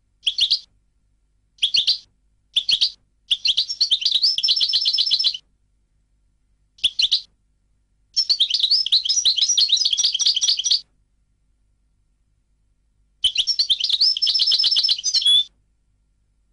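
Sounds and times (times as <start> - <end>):
European goldfinch song: 0.2 - 0.7, 1.6 - 5.4, 6.8 - 7.3, 8.2 - 10.8, 13.2 - 15.5.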